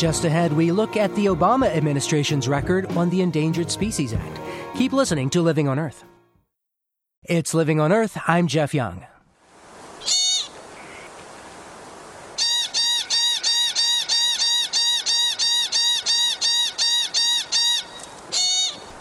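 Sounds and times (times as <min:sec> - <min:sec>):
speech: 0:00.0 - 0:06.1, 0:07.2 - 0:09.1
pika squeaking calls: 0:10.0 - 0:11.1, 0:12.4 - 0:18.9.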